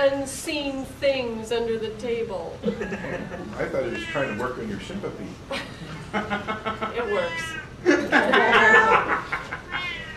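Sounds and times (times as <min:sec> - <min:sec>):
speech: 0:00.0 - 0:08.9
laughter: 0:02.6 - 0:03.9, 0:05.5 - 0:10.1
cat meowing in drawn-out, plaintive cries: 0:03.9 - 0:04.4, 0:07.1 - 0:07.7, 0:09.7 - 0:10.1.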